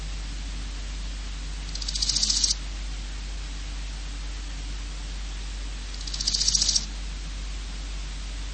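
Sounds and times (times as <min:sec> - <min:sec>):
steady hiss: 0:00.0 - 0:08.5
large gold grasshopper rasping pulses: 0:01.6 - 0:02.6, 0:05.9 - 0:06.9.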